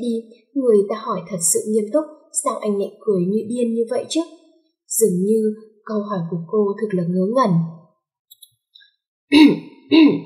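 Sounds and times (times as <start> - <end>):
speech: 0.0 - 4.4, 5.0 - 7.8, 9.3 - 10.2
man clearing his throat with voiced coughs: 9.3 - 10.2.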